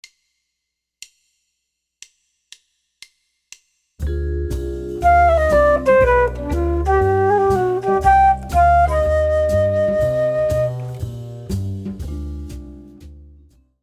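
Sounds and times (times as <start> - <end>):
two five one chord progression in C minor: 5.0 - 11.0.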